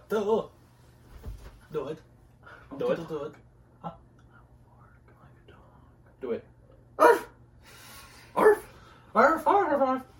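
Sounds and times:
speech: 0.1 - 0.6, 1.7 - 2.1, 2.7 - 4.0, 6.2 - 7.2, 9.2 - 10.1
person imitating a dog barking with bark-like yelps: 7.0 - 7.4.

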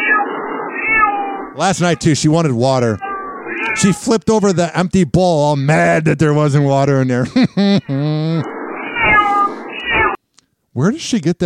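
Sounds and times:
female house cat meowing: 0.0 - 2.2, 2.8 - 4.1, 8.8 - 10.2
speech: 1.6 - 3.1, 3.7 - 8.6, 10.8 - 11.4
laughter: 7.0 - 8.5.

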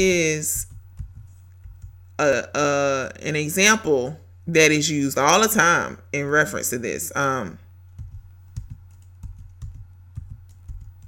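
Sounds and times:
speech: 0.0 - 0.7, 2.2 - 7.6
steady low hum: 0.0 - 11.0
typing on a computer keyboard: 0.6 - 2.0, 7.9 - 11.0.

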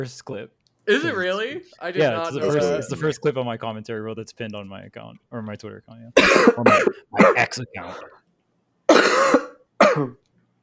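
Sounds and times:
speech: 0.0 - 8.2, 10.0 - 10.3
person coughing: 6.2 - 8.1, 8.9 - 10.2
throat clearing: 6.2 - 8.1, 8.9 - 10.2.

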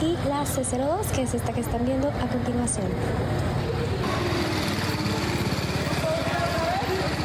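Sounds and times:
speech: 0.5 - 3.6
motorcycle engine running: 4.0 - 7.2.

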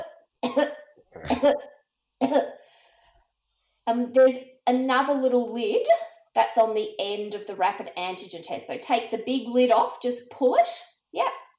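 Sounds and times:
person forcing deliberate coughs before a saliva antigen test: 0.4 - 1.6, 2.2 - 2.5
speech: 1.2 - 2.6, 3.9 - 11.4.

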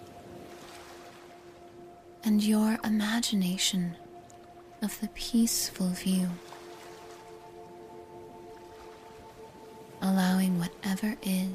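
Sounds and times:
low tonal hum: 0.0 - 11.5
ocean waves and surf: 0.0 - 11.5
speech: 2.2 - 4.0, 4.8 - 6.6, 10.0 - 11.5.

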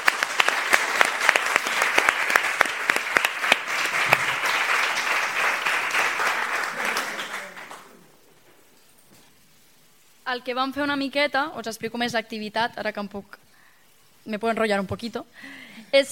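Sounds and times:
crowd applauding: 0.0 - 8.3
speech: 10.3 - 13.4, 14.3 - 16.1.

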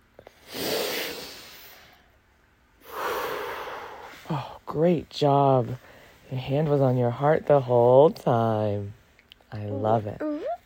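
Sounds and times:
slow deep breaths during a guided breathing exercise: 0.2 - 2.2, 2.8 - 4.7, 5.8 - 6.3
speech: 4.3 - 10.3.

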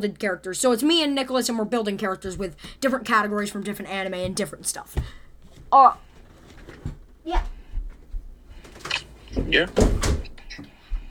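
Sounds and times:
speech: 0.0 - 6.0, 6.8 - 7.5, 9.3 - 10.7
shuffling handling noises: 5.0 - 9.7
door being pulled shut: 8.8 - 10.4.

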